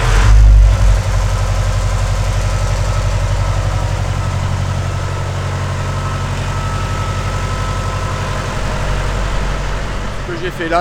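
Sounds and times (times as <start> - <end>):
diesel generator starting and idling: 0.0 - 10.7
speech: 10.5 - 10.7.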